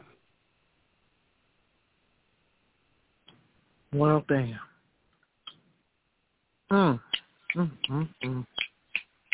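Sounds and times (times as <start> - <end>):
speech: 3.9 - 4.7, 6.7 - 8.6
sharp dry finger snaps: 5.4 - 5.6, 7.1 - 9.3
person humming or vocalizing: 7.5 - 8.6.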